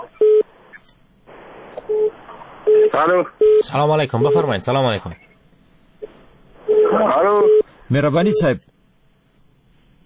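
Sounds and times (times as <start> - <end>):
telephone beeps after a call to a radio call-in line was cut off: 0.2 - 0.4, 1.9 - 2.1, 2.7 - 4.5, 6.7 - 7.7
speech: 3.0 - 5.2, 7.0 - 8.7.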